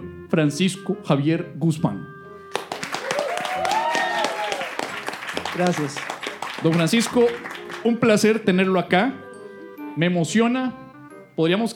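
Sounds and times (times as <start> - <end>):
speech: 0.4 - 2.1, 5.6 - 9.2, 10.0 - 10.8, 11.4 - 11.7
crowd applauding: 2.5 - 8.3
voices cheering: 3.0 - 5.0.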